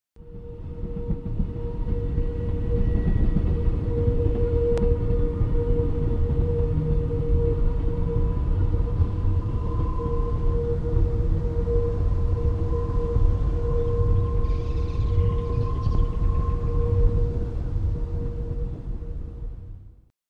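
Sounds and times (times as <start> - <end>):
train: 0.2 - 20.1
birds: 14.4 - 16.7.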